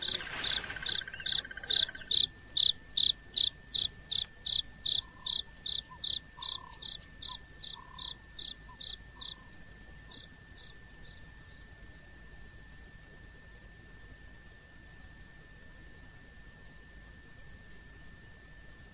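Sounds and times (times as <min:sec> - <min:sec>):
beetle mating call of short high dry pulses: 0:00.0 - 0:09.4.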